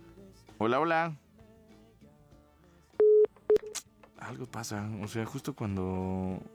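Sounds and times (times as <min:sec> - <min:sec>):
speech: 0:00.6 - 0:01.2, 0:04.2 - 0:06.5
telephone beeps as a phone call cuts off: 0:03.0 - 0:03.8.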